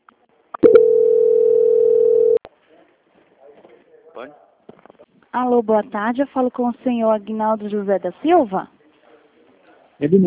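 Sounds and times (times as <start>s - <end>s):
steady single-pitch telephone tone while a call is transferred: 0.6s - 2.4s
speech: 4.2s - 4.4s, 5.4s - 8.7s, 10.0s - 10.2s.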